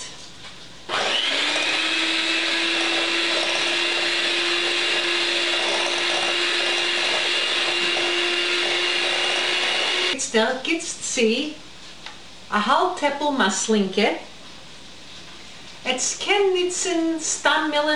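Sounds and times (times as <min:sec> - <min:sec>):
electric mixer on speed five blending brown sugar: 0:00.9 - 0:10.2
speech: 0:10.4 - 0:11.6, 0:12.5 - 0:14.3, 0:15.9 - 0:17.9.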